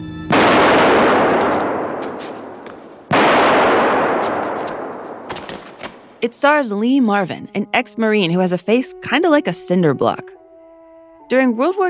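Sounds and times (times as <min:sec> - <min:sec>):
gunshots from the opening of a 1967 crime neo-noir film: 0:00.3 - 0:06.2
speech: 0:06.2 - 0:10.4, 0:11.3 - 0:11.8.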